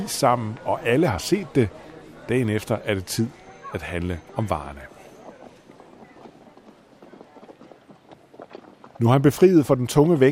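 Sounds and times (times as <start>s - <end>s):
speech: 0.0s - 4.9s, 9.0s - 10.3s
faint murmur: 0.0s - 10.3s
horse carrying bags of Norwegian slate trotting along a road: 4.6s - 10.3s.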